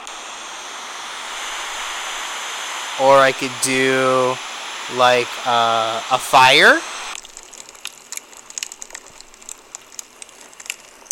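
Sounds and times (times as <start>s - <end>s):
waterfall sound from a noise machine: 0.0s - 7.2s
speech: 3.0s - 6.9s.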